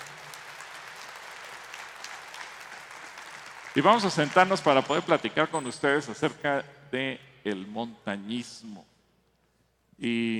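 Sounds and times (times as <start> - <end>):
audience applause: 0.0 - 5.1
speech: 3.8 - 8.9, 10.0 - 10.3.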